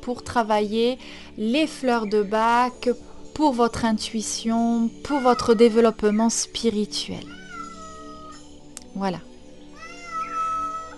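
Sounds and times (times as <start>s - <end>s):
speech: 0.0s - 7.4s, 9.0s - 9.3s
drawn-out cat meow: 5.1s - 5.7s, 7.2s - 8.4s, 9.7s - 10.9s.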